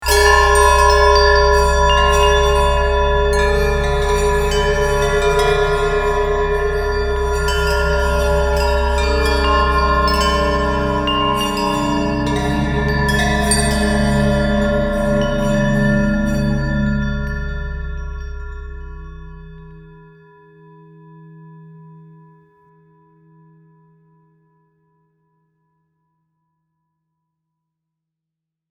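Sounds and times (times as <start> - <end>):
big bell clatter: 0.0 - 19.9.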